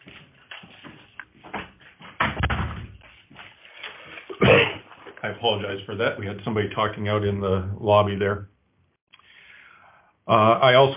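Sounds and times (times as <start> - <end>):
shuffling movement noises: 0.0 - 2.2, 2.9 - 5.6
speech: 5.3 - 8.5, 10.3 - 10.9.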